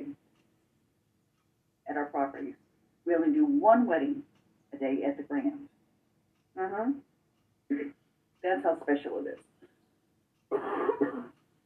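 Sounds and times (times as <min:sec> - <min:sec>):
speech: 0:02.0 - 0:05.7, 0:06.6 - 0:07.1, 0:07.7 - 0:09.5
harsh raspy coughs: 0:10.5 - 0:11.4.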